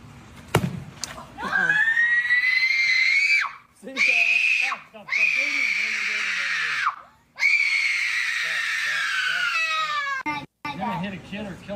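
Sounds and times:
little boy screaming in long high-pitched wails: 0:01.4 - 0:10.4.

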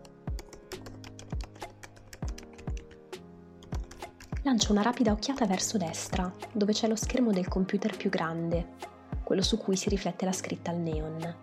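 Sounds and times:
typing on a laptop keyboard at a desk: 0:00.0 - 0:04.5
speech: 0:04.4 - 0:11.4.

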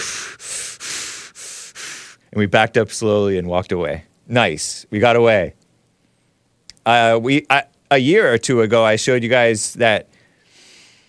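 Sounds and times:
person imitating hard heavy breathing: 0:00.0 - 0:02.2
speech: 0:02.3 - 0:05.6, 0:06.8 - 0:10.1.

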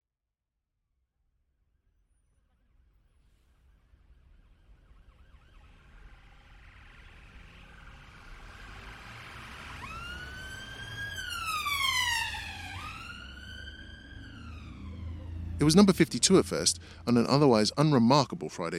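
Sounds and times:
low traffic rumble: 0:04.6 - 0:18.7
ambulance siren wailing: 0:04.7 - 0:18.7
speech: 0:15.6 - 0:18.7.

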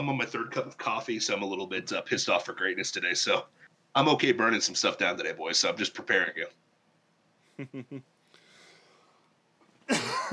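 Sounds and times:
speech: 0:00.0 - 0:06.6, 0:07.6 - 0:08.1, 0:09.9 - 0:10.3
person coughing harshly from lingering COVID: 0:09.9 - 0:10.3.

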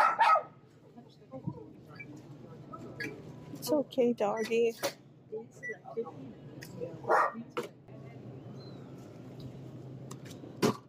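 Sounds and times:
dog barking at a supermarket self-checkout: 0:00.0 - 0:00.6, 0:07.1 - 0:07.4
steady supermarket store hum: 0:00.0 - 0:10.8
speech: 0:03.7 - 0:05.0, 0:06.0 - 0:06.3.

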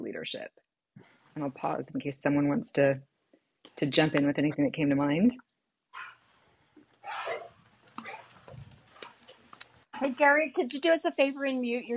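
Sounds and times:
speech: 0:00.2 - 0:03.1, 0:03.7 - 0:06.1, 0:10.0 - 0:11.9
dogs barking as if through a phone line: 0:05.9 - 0:06.2.

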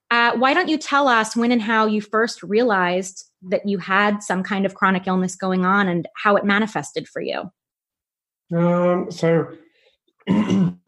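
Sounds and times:
speech: 0:00.3 - 0:07.6, 0:08.5 - 0:09.6, 0:10.2 - 0:10.8
person clearing throat: 0:10.2 - 0:10.8
person coughing: 0:10.3 - 0:10.8.

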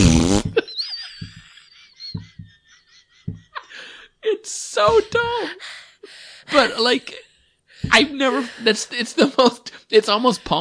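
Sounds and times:
man farting into a microphone at a comedy set: 0:00.0 - 0:00.7
laughter: 0:00.4 - 0:04.0
speech: 0:04.5 - 0:05.8, 0:06.5 - 0:07.2, 0:07.8 - 0:10.5.

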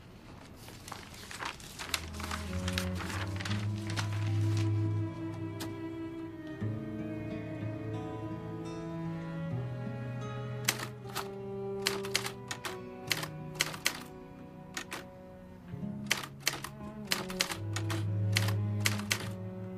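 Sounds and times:
typewriter keys clacking: 0:01.1 - 0:04.2, 0:10.7 - 0:14.1, 0:14.8 - 0:15.1, 0:16.1 - 0:19.4
low music: 0:01.6 - 0:19.7.

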